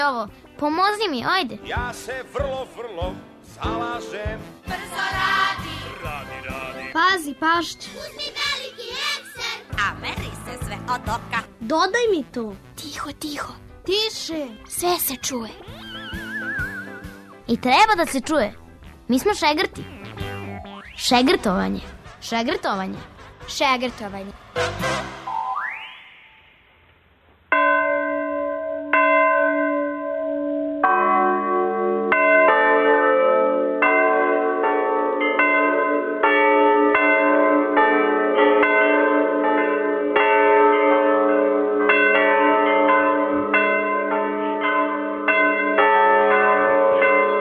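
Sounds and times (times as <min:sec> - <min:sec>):
speech: 0:00.0 - 0:15.8, 0:17.5 - 0:20.0, 0:21.0 - 0:25.2
bells rung by apprentice bell-ringers at a bell foundry in Belosavci near Mladenovac: 0:27.5 - 0:47.3.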